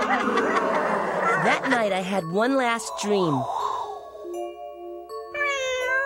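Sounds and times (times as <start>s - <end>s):
laughter: 0.0s - 2.1s
speech: 1.4s - 3.6s
cat meowing: 5.4s - 6.0s.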